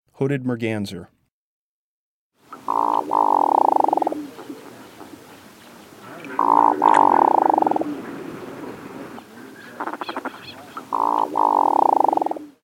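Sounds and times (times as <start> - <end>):
hooded merganser calling: 2.6 - 4.3, 6.2 - 8.0, 9.2 - 12.4.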